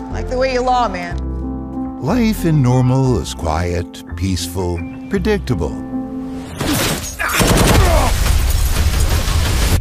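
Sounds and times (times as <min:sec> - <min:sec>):
speech: 0:00.1 - 0:01.3, 0:02.0 - 0:05.9
rapid gunfire from people shooting: 0:07.3 - 0:09.8.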